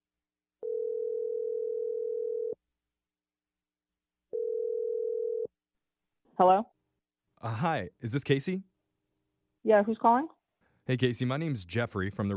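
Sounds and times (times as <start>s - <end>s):
telephone dial tone: 0.6s - 2.5s, 4.3s - 5.5s
speech: 6.4s - 6.8s, 7.4s - 8.7s, 9.6s - 12.3s.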